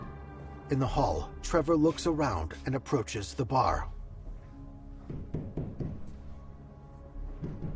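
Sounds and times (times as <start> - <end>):
speech: 0.7 - 4.0
dull knocks on a wall: 5.1 - 6.0, 7.4 - 7.7.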